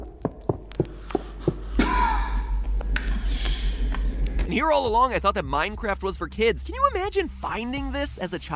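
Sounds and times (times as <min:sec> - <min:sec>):
footfalls of someone running desperately: 0:00.0 - 0:01.7
sharp gasp and ragged heavy breathing: 0:00.9 - 0:04.4
speech: 0:04.5 - 0:08.5.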